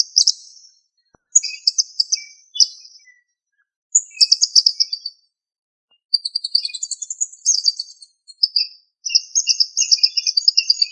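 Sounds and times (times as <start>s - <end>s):
bird chirping: 0.0s - 5.3s, 5.9s - 10.9s.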